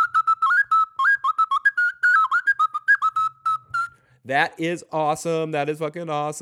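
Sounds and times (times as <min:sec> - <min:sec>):
bright whistle sound effect playing a playful tune: 0:00.0 - 0:04.2
speech: 0:04.2 - 0:06.4.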